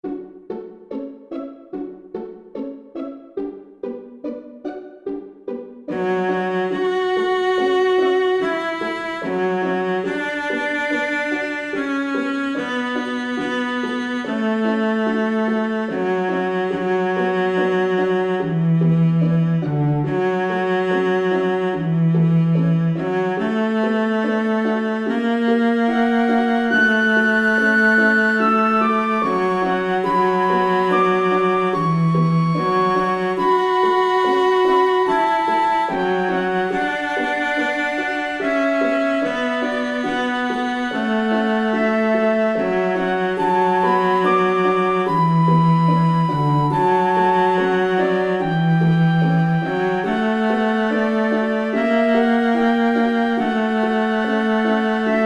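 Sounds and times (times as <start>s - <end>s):
cello concerto movement: 0.0s - 55.2s.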